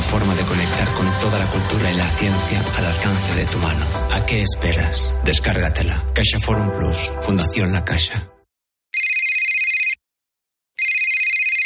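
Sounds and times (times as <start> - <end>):
speech: 0.2 - 8.4
telephone ringing with electronic trill: 9.0 - 10.0, 10.8 - 11.6.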